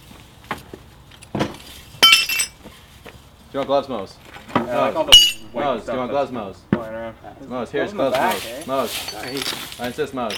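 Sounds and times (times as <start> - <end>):
phosphor-coated glass clinking: 2.0 - 2.6, 5.1 - 6.0
phosphor-coated glass shattering and shards tinkling: 2.0 - 2.6, 5.1 - 6.0
speech: 3.5 - 10.3.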